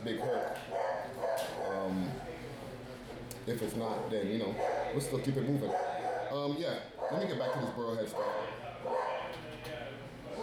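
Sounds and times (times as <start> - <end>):
speech: 0.0 - 1.2, 3.5 - 9.0
low murmur of voices: 0.0 - 10.4
dog barking and yipping: 0.2 - 1.8, 5.7 - 6.3, 7.0 - 9.2.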